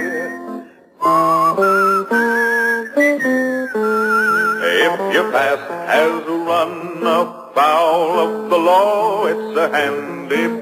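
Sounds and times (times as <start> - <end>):
whistled tune with slight vibrato: 0.0 - 5.0
speech: 5.1 - 10.6.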